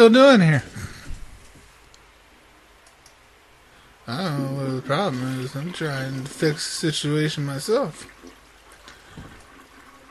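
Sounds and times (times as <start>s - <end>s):
speech: 0.0s - 0.7s, 4.1s - 8.1s
toilet flushing with water running: 4.2s - 10.0s.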